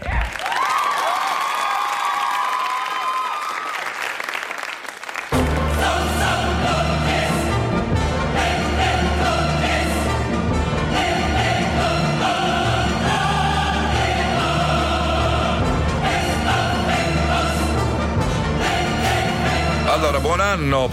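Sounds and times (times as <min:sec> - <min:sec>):
crowd clapping and cheering loudly: 0:00.0 - 0:06.8
music: 0:05.3 - 0:20.9.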